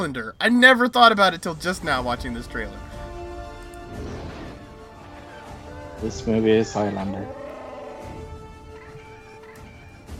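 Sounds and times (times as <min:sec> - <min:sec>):
speech: 0:00.0 - 0:02.9, 0:06.0 - 0:07.4
bird-like creature squawking and gobbling: 0:06.7 - 0:09.6.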